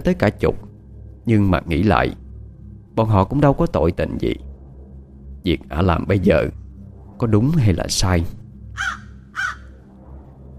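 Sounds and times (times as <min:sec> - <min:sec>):
speech: 0:00.0 - 0:00.6, 0:01.3 - 0:02.2, 0:03.0 - 0:04.5, 0:05.4 - 0:06.6, 0:07.2 - 0:09.0
low steady hum: 0:00.0 - 0:10.5
crow cawing at night: 0:08.7 - 0:09.8.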